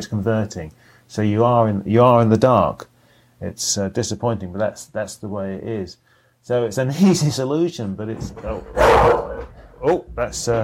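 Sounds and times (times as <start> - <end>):
speech: 0.0 - 10.6
bulldog barking at the front door: 8.6 - 9.6.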